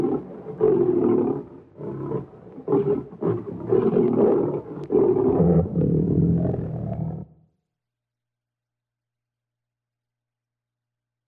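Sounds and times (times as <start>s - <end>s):
lion roar: 0.0s - 7.4s.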